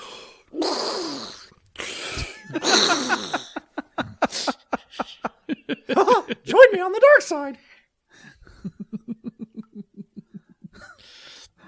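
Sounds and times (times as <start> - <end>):
voice imitating heavy respirator breathing in a squawky duck-like tone: 0.0 - 3.4
laughter: 2.2 - 6.6, 8.5 - 11.0
speech: 2.5 - 3.4, 6.8 - 7.7.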